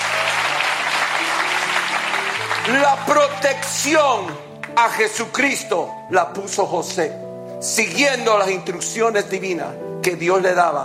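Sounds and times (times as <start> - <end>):
audience applause during a religious sermon: 0.0 - 4.8
speech: 2.6 - 10.8.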